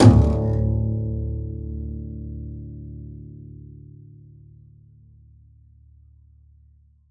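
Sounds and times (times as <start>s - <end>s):
double bass pizzicato: 0.0s - 4.3s.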